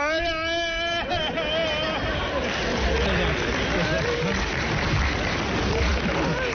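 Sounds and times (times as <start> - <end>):
man imitating the loud wailing cry of a mourner at a funeral: 0.0 - 2.2
laughter: 0.6 - 6.5.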